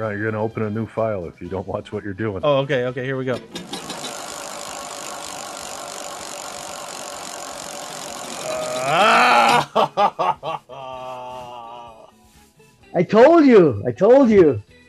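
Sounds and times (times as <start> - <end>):
speech: 0.0 - 3.8, 9.8 - 10.3, 13.0 - 14.8
prize wheel spinning on a computer: 3.4 - 9.6
laughter: 8.5 - 12.0.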